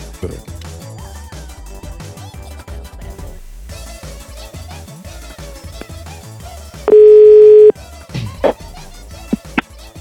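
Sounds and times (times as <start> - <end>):
speech: 0.2 - 0.6
phone line clicks and blips: 6.9 - 7.7
telephone dial tone as a call is placed: 6.9 - 7.7.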